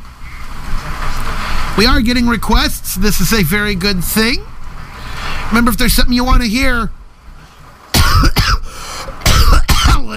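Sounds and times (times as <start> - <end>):
speech: 1.8 - 4.5, 5.5 - 7.0
person coughing: 8.0 - 10.1.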